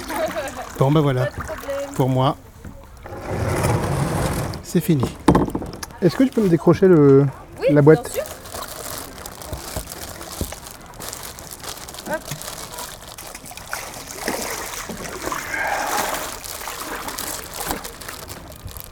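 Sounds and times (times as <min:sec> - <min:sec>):
light watery trickles: 0:00.0 - 0:03.5, 0:05.6 - 0:18.9
speech: 0:00.8 - 0:02.5, 0:04.7 - 0:05.2, 0:06.0 - 0:08.2
plastic bag wrapped around a digital audio recorder crinkling: 0:07.9 - 0:18.9.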